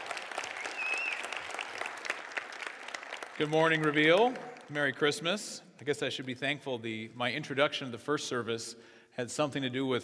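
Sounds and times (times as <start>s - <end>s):
room full of people applauding: 0.0s - 4.7s
brief whistle: 0.6s - 1.4s
speech: 3.4s - 10.0s.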